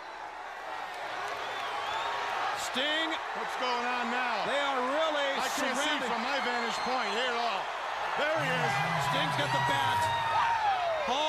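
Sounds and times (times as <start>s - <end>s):
large pro-WCW wrestling crowd roaring at the Omni arena: 0.3s - 11.2s
speech: 2.8s - 4.9s, 5.5s - 10.2s.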